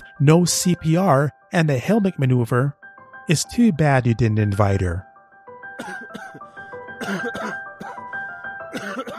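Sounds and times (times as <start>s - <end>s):
speech: 0.2s - 5.1s, 5.8s - 6.3s, 7.0s - 7.6s
person coughing harshly: 5.8s - 6.4s, 7.0s - 8.1s, 8.7s - 9.1s.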